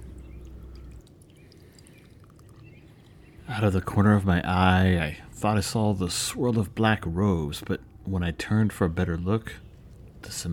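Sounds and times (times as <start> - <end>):
drink pouring into a glass: 0.2 - 3.1
speech: 3.5 - 9.6, 10.2 - 10.5.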